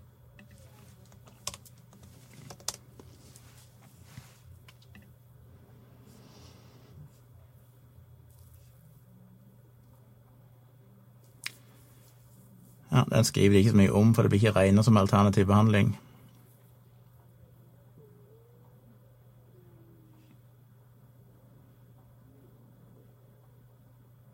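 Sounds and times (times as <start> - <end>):
typing on a computer keyboard while entering a search: 0.4 - 2.8
speech: 13.0 - 16.1.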